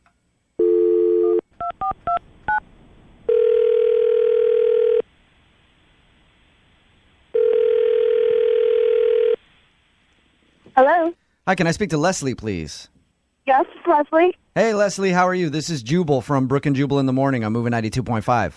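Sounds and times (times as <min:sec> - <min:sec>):
phone dial tone: 0:00.6 - 0:02.2, 0:03.3 - 0:05.0, 0:07.4 - 0:09.4
quiet phone line hiss: 0:03.3 - 0:05.1, 0:07.3 - 0:09.4
speech: 0:11.5 - 0:12.9, 0:13.5 - 0:18.5.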